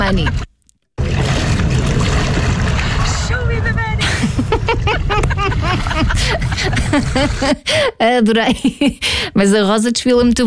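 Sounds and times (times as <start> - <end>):
laughter: 0.0 - 0.5, 4.0 - 7.8
speech: 0.1 - 0.5, 6.0 - 10.4
water splashing as someone wades through it: 1.0 - 3.7.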